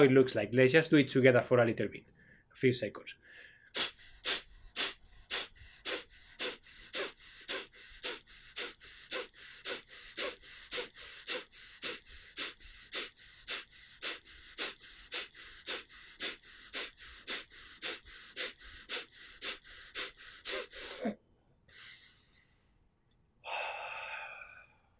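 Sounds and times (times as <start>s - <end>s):
speech: 0.0s - 4.4s
slow long breaths: 2.2s - 2.5s, 3.2s - 24.9s
rapid forceful nasal exhalations as a breathing exercise: 3.2s - 22.7s, 23.4s - 24.8s.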